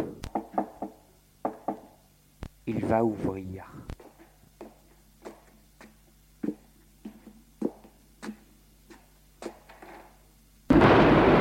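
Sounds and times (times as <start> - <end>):
knocking on a door: 0.3 - 1.9
speech: 2.9 - 3.9.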